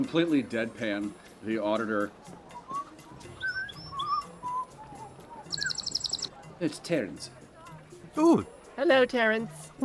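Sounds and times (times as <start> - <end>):
speech: 0.0 - 2.4, 6.6 - 7.4, 8.2 - 9.8
small caged pet bird chirping and tweeting: 3.4 - 6.3.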